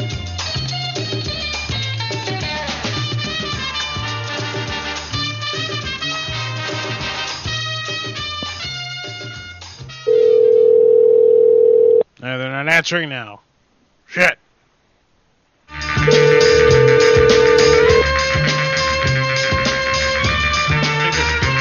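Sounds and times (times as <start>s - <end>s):
music playing during a telephone call: 0.0s - 9.5s, 15.7s - 21.6s
loud steady electronic phone tone: 10.1s - 12.0s, 16.1s - 18.0s
speech: 12.7s - 13.4s, 14.1s - 14.4s.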